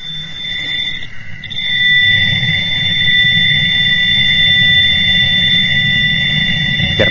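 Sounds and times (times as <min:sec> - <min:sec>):
cosmic radio background noise hiss of static: 0:00.0 - 0:07.0
high-pitched beep: 0:00.0 - 0:07.0.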